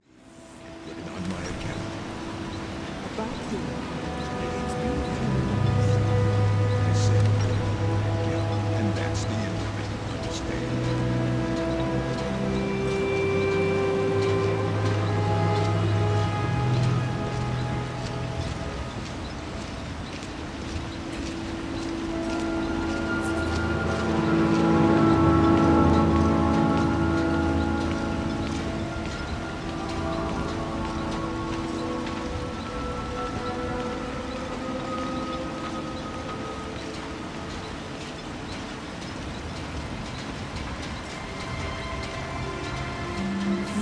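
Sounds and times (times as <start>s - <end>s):
music: 0.0s - 43.8s
night ambience: 0.0s - 43.8s.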